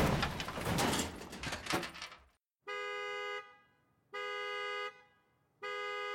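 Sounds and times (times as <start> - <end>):
loud crunching car crash: 0.0 - 2.1
car alarm horn blasts set off by a crash: 2.6 - 6.1.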